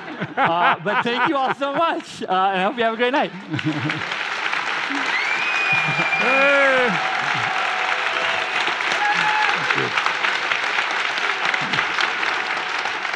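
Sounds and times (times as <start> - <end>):
laughter: 0.0 - 2.2, 3.2 - 8.2, 9.0 - 10.1, 11.3 - 12.2
speech: 0.2 - 4.2, 6.2 - 7.1
crowd applauding: 3.3 - 13.1
whoops: 4.9 - 10.0.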